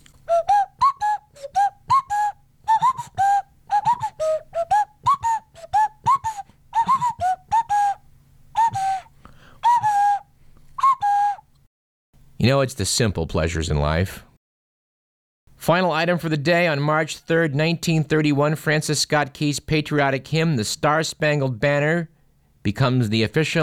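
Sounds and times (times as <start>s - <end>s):
nose whistle playing a bouncy tune: 0.2s - 11.5s
speech: 12.5s - 14.3s, 15.7s - 23.6s.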